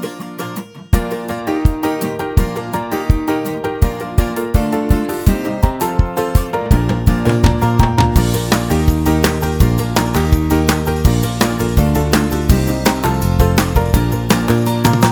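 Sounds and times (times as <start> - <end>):
rhythmic beat: 0.9 - 15.1.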